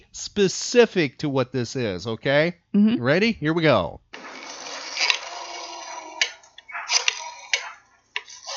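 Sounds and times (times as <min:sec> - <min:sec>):
speech: 0:00.2 - 0:04.0
rotary phone dial spinning back with mechanical ratchet: 0:04.4 - 0:08.5.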